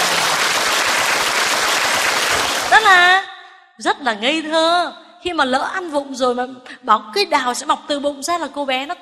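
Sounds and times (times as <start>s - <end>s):
audience applause: 0.0s - 2.8s
speech: 2.9s - 9.0s.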